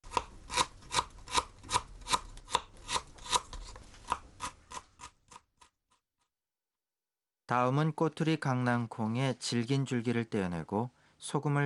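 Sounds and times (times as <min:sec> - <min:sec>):
knife finely chopping peeled ginger: 0:00.0 - 0:05.7
speech: 0:07.5 - 0:11.6.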